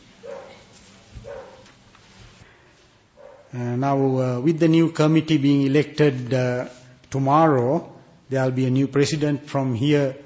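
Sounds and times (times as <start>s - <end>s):
dogs barking outside: 0.2s - 1.7s, 3.2s - 3.5s
speech: 3.5s - 10.2s.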